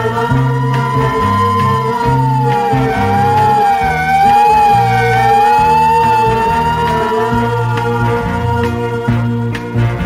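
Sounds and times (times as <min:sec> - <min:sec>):
speeding ambulance siren wailing: 0:00.1 - 0:09.9.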